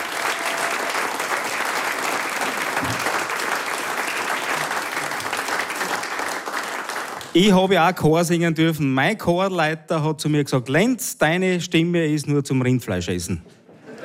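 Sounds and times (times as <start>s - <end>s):
applause from a large audience: 0.0s - 7.4s
speech: 7.4s - 13.6s.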